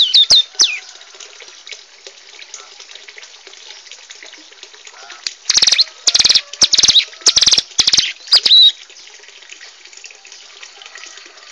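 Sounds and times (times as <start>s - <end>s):
Bar-winged prinia song of high strident repeated notes, adult and young birds: 0.0s - 0.8s, 5.5s - 8.8s.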